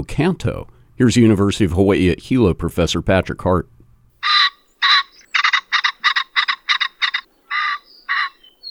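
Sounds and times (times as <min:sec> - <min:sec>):
speech: 0:00.0 - 0:03.7
ringneck pheasant giving harsh raspy call notes: 0:04.2 - 0:08.7.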